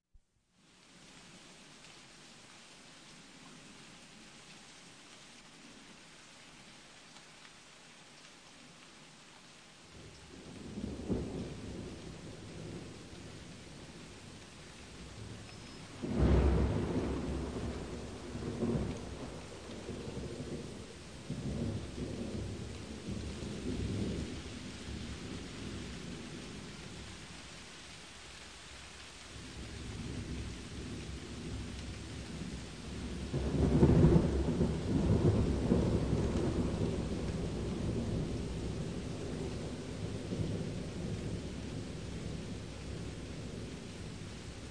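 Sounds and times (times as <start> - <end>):
rain: 0.1 - 44.6
thunder: 15.0 - 26.0, 29.4 - 44.6.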